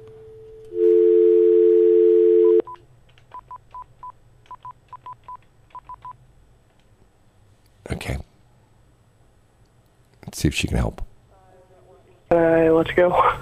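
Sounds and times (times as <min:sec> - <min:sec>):
landline telephone dial tone: 0:00.5 - 0:02.8
landline telephone keypad beeps: 0:02.4 - 0:06.2
speech: 0:10.4 - 0:11.1, 0:12.9 - 0:13.3.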